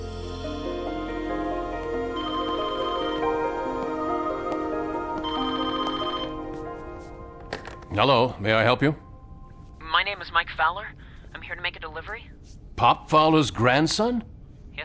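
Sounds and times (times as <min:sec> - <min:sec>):
steady tonal background: 0:00.0 - 0:12.0
telephone ringing after a number is dialed: 0:02.2 - 0:03.6, 0:05.2 - 0:06.5
speech: 0:08.0 - 0:09.0, 0:10.2 - 0:14.8.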